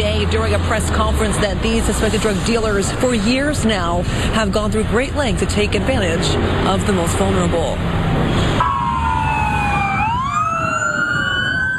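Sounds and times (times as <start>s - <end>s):
steady rumble of traffic: 0.0s - 11.7s
speech: 0.2s - 8.7s
emergency vehicle sirens wailing in Southern California: 7.9s - 11.7s.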